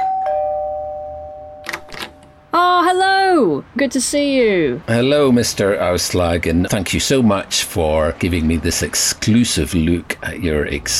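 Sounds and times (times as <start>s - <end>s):
doorbell chime: 0.0s - 2.4s
speech: 3.4s - 10.9s.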